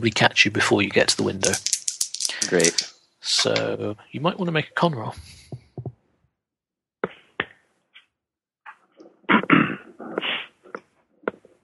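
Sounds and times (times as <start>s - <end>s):
speech: 0.0s - 1.7s, 2.4s - 5.4s
person having a sneezing fit: 9.3s - 10.8s.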